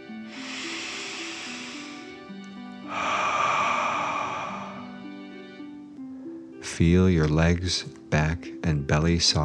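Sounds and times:
soft music humming quietly: 0.0 - 9.4
louder airy exhale: 0.1 - 5.4
slow deep breath drawn in through the nose: 0.1 - 5.4
speech: 6.8 - 9.4.

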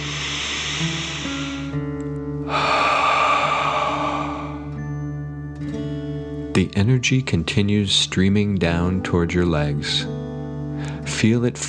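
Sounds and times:
deep breath in through nose and out through mouth: 0.0 - 5.2
soft steady musical drone: 0.0 - 6.9
speech: 6.6 - 10.2, 11.1 - 11.6.

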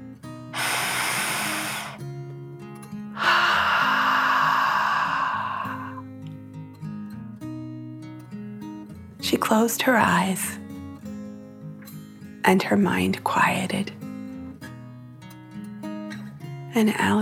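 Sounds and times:
deep breath in and out: 0.5 - 2.0, 3.2 - 6.0
speech: 9.3 - 10.6, 12.5 - 14.0, 16.8 - 17.2.

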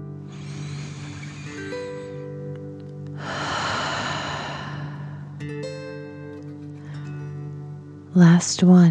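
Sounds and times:
deep breathing in and out during a guided breathing exercise: 0.0 - 2.5, 3.1 - 5.5
steady sustained musical drone: 0.0 - 8.8.

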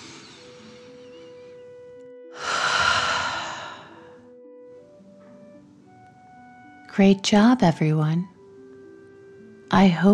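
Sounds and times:
soft steady tone: 0.0 - 10.1
deep breath in and out during a guided breathing exercise: 2.3 - 4.3
speech: 7.0 - 8.3, 9.7 - 10.1.

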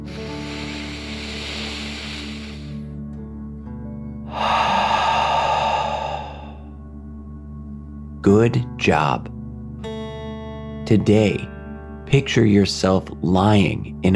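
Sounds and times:
deep breathing in and out through the mouth: 0.0 - 3.0, 4.2 - 7.0
low drone: 0.0 - 3.1, 4.2 - 7.8
speech: 8.4 - 9.4, 10.9 - 14.1.

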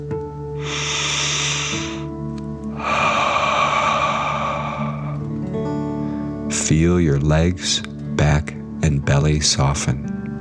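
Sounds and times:
deep inhale through the nose and exhale through the mouth: 0.6 - 6.3
soft sustained musical drone: 0.6 - 7.1
speech: 6.7 - 10.1.

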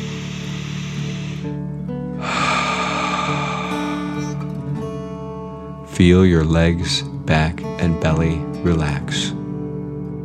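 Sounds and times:
deep breath in through the nose and forceful exhale: 0.0 - 1.6, 2.2 - 5.1
steady music: 0.0 - 10.2
speech: 6.0 - 9.4.

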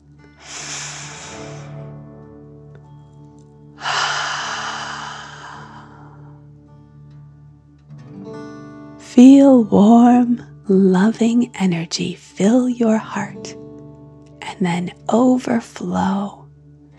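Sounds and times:
deep dragon breaths in a guided energy meditation: 0.4 - 1.9, 3.8 - 6.5
speech: 9.2 - 13.6, 14.6 - 16.4.

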